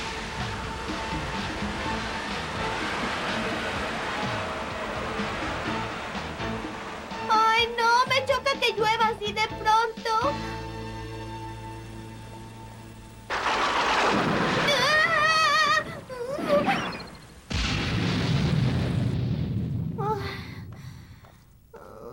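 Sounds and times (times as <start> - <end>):
loud cartoon thunder crash: 0.0 - 9.0, 13.3 - 21.1
sharp crackling bursts of cartoon thunderstorm: 0.0 - 9.2, 11.0 - 21.7
cartoon thunderstorm rumbling conjured by a magic spell: 0.0 - 9.9, 13.0 - 21.4.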